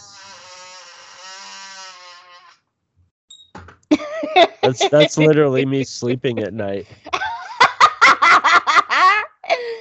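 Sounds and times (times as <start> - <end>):
computer chair squeaking: 0.0 - 2.7
laughter: 3.9 - 9.7
speech: 4.4 - 7.1.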